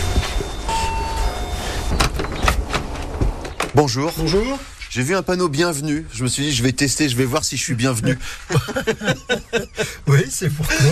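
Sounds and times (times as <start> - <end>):
doorbell at a house's front entrance ringing: 0.0 - 1.9
steady hum: 0.0 - 10.9
front door unlatched and opened: 1.9 - 4.4
speech: 3.8 - 10.9
laughter: 8.0 - 10.9.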